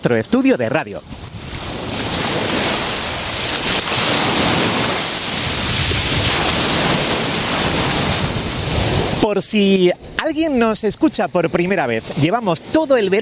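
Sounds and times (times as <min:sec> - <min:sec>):
speech: 0:00.0 - 0:01.2, 0:09.2 - 0:13.2
sea waves breaking on a sandy beach: 0:00.0 - 0:13.2
westerly wind gusts: 0:00.0 - 0:13.2.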